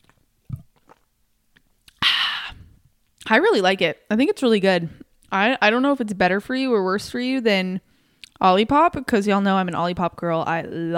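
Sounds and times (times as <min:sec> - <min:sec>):
loud breathy slurp from a bottle of drink: 0:00.0 - 0:01.1
faint mouth clicks: 0:01.6 - 0:02.7
speech: 0:03.3 - 0:10.9.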